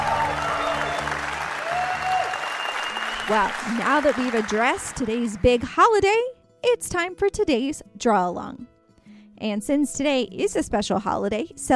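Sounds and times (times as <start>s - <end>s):
crowd applauding: 0.0s - 5.6s
speech: 3.3s - 8.7s, 9.4s - 11.7s.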